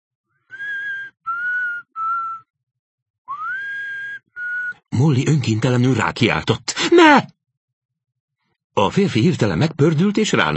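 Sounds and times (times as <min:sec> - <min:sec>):
person softly whistling a simple nursery rhyme melody: 0:00.5 - 0:02.5, 0:03.3 - 0:04.8
speech: 0:05.0 - 0:07.4, 0:08.8 - 0:10.5.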